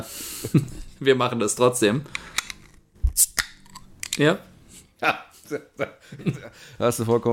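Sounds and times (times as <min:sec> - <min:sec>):
speech: 0:00.0 - 0:02.4, 0:04.2 - 0:07.3
swing-top bottle clicks: 0:02.1 - 0:04.2
laughter: 0:05.6 - 0:06.6.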